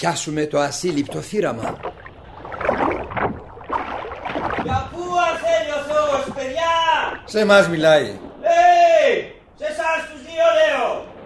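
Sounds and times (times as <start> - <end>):
speech: 0.0 - 2.0, 6.4 - 9.2
water sloshing and splashing as a rowboat is pushed off: 0.0 - 8.4
rowboat knocking as it is untied and pushed off: 0.8 - 7.9.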